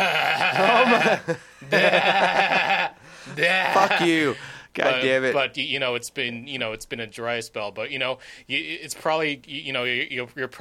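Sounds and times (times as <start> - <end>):
person's voice imitating a goat bleating: 0.0 - 1.0, 2.0 - 4.3
laughter: 0.0 - 4.4
speech: 1.0 - 10.5.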